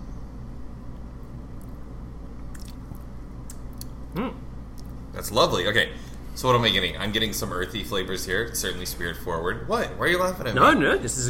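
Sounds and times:
low steady hum: 0.0 - 11.2
wet slurps and mouth clicks: 2.4 - 4.0
person sipping a cocktail: 2.5 - 4.9
person murmuring: 4.1 - 4.4
speech: 4.2 - 4.4, 5.2 - 11.2.

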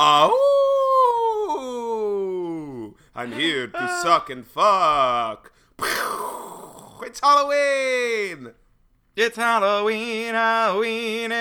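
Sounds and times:
speech: 0.0 - 0.4, 3.2 - 6.0, 7.0 - 8.6, 9.2 - 11.3
person imitating a wolf howl in a studio: 0.0 - 2.9, 3.7 - 4.2, 5.8 - 7.0.

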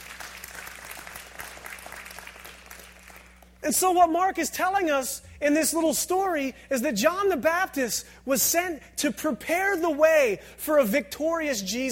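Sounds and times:
large indoor audience applauding: 0.0 - 3.5
speech: 3.7 - 11.8.

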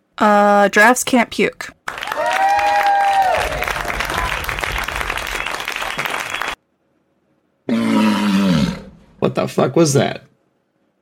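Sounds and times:
speech: 0.2 - 1.8, 9.3 - 10.3
applause-like noise: 1.8 - 6.6
walrus roaring: 7.7 - 9.1.

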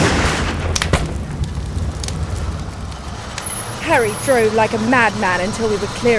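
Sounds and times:
distant gunshots: 0.0 - 1.8
steady low rumble: 0.0 - 6.1
speech: 3.9 - 6.1.

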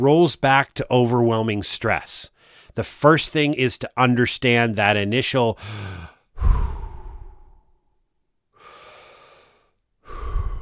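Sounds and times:
speech: 0.0 - 6.6
deep breathing as a calming pause under stress: 2.4 - 2.8, 5.6 - 7.8, 8.6 - 10.5.

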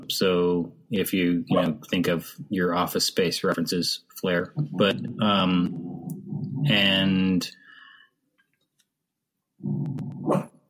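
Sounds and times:
speech: 0.1 - 5.9, 6.6 - 7.6, 9.6 - 10.5
pet dog barking and growling: 4.6 - 6.9, 9.6 - 10.6.

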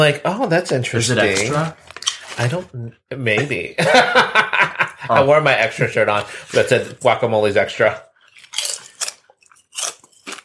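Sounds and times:
speech: 0.0 - 8.7
laughter: 3.8 - 5.4
chewing kettle-style sea salt potato chips cooked in avocado oil: 8.3 - 10.4.

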